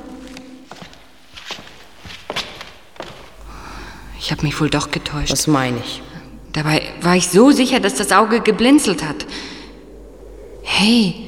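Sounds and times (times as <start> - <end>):
slow footsteps on a hard floor walking toward a painting: 0.0 - 3.5
speech: 4.2 - 9.5, 10.8 - 11.2.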